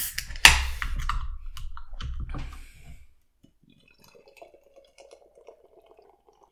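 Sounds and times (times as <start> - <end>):
beer opened with a sharp crack and hiss: 0.0 - 1.2
beer pouring into a glass with faint fizzing and trickling: 0.0 - 6.5.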